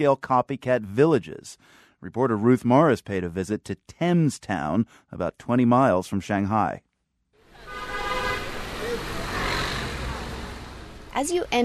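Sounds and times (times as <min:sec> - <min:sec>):
speech: 0:00.0 - 0:06.8, 0:11.2 - 0:11.6
car horns honking in a Chinese city: 0:07.4 - 0:11.2
traffic engines roaring in a Chinese city: 0:07.4 - 0:11.6.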